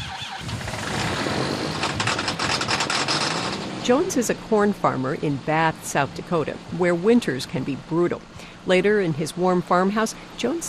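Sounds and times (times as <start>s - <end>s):
heavy diesel tractor engine cranking and sputtering, struggling to start in cold: 0.0s - 10.6s
rapid ticking bursts: 1.7s - 3.6s
speech: 3.9s - 10.6s.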